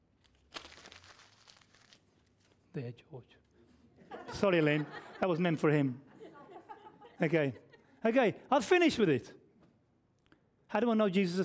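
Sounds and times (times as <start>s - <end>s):
paper being crumpled up by hand: 0.0s - 2.7s
speech: 2.8s - 3.5s, 4.4s - 6.1s, 7.2s - 9.4s, 10.7s - 11.4s
laughter: 4.0s - 8.3s.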